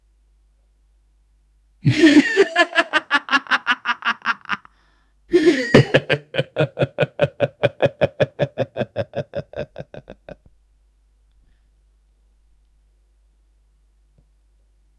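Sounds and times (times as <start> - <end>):
person laughing sarcastically: 1.8 - 4.7, 5.3 - 10.5.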